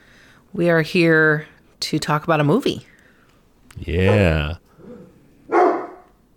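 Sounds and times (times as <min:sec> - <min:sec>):
speech: 0:00.5 - 0:02.9, 0:03.8 - 0:04.6
faint low murmur: 0:03.7 - 0:04.6
dog bark: 0:05.5 - 0:06.1.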